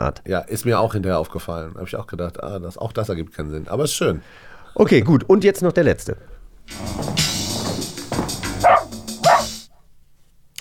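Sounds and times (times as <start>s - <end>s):
speech: 0.0s - 7.1s
dog barking: 8.6s - 9.6s.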